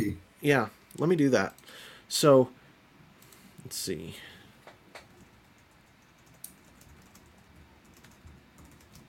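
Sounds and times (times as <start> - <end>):
speech: 0.0 - 2.6, 3.6 - 4.3
typing on a computer keyboard: 5.0 - 9.0.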